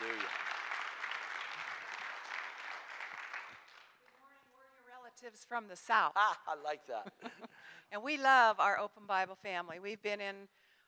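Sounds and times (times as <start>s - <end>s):
audience applauding: 0.0s - 4.0s
speech: 5.2s - 10.6s.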